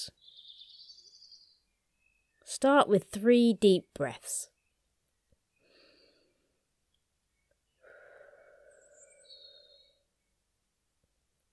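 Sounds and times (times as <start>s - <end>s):
high thin bird trill from the spring dawn chorus: 0.0s - 2.5s, 8.5s - 10.0s
speech: 2.6s - 4.5s.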